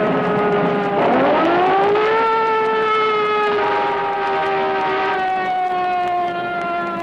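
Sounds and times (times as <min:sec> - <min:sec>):
continuous traffic rumble: 0:00.0 - 0:07.0
police cruiser siren wailing: 0:00.0 - 0:07.0
police cruiser car horn: 0:03.5 - 0:05.9.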